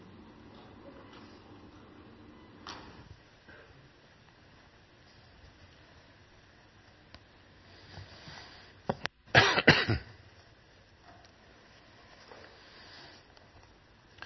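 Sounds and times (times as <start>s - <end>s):
person coughing and clearing throat: 9.3s - 10.2s.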